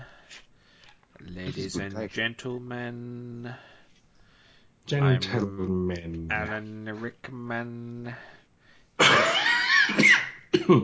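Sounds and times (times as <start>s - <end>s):
speech: 1.4s - 3.7s, 4.9s - 8.4s, 9.9s - 10.8s
person coughing into the microphone: 9.0s - 10.8s.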